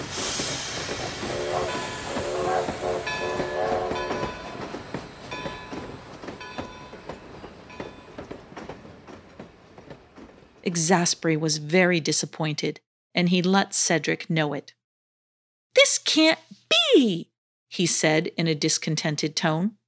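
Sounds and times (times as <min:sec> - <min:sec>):
passenger train steam hiss: 0:00.0 - 0:04.0
speech: 0:10.7 - 0:14.8, 0:15.8 - 0:19.8.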